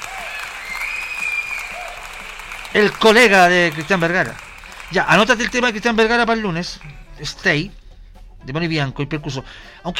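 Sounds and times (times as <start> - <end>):
applause welcoming a radio guest: 0.0 - 7.1
speech: 2.7 - 7.8, 8.4 - 9.9.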